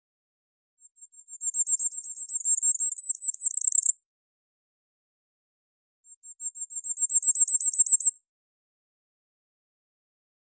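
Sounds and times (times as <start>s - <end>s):
bisbis singing a high trill: 0.9s - 4.0s, 6.1s - 8.2s.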